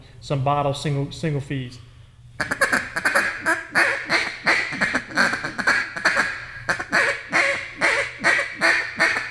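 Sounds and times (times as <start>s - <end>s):
speech: 0.2s - 2.6s
duck call blown in a hiccup pattern: 2.4s - 9.2s.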